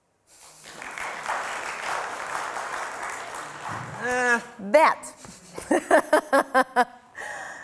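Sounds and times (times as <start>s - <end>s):
crowd applauding: 0.6s - 4.4s
speech: 4.0s - 7.0s
laughter: 5.2s - 7.0s.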